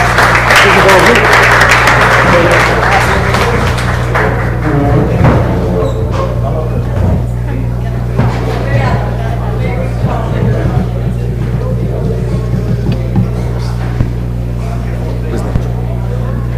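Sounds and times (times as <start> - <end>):
room full of people applauding: 0.0 - 5.2, 9.0 - 14.2
murmuring voices: 0.0 - 16.5
low hum: 3.2 - 16.5.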